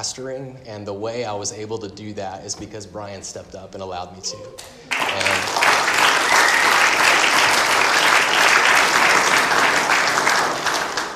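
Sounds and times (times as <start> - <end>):
speech: 0.0 - 5.6
audience clapping: 4.6 - 11.1.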